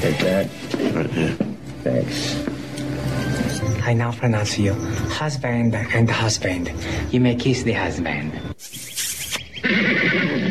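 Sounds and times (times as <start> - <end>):
speech: 0.2 - 2.5, 3.9 - 8.7
horse snorting: 9.1 - 10.4
horse neighing: 9.6 - 10.4.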